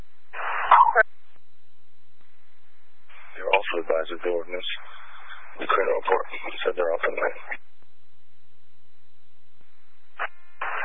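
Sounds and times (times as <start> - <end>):
sneeze: 0.4 - 1.0
speech: 4.1 - 5.0, 5.6 - 7.6.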